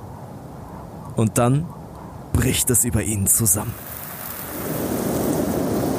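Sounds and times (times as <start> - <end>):
speech: 1.2 - 1.8, 2.4 - 4.7
roaring storm sweeping across a plain: 3.3 - 5.9.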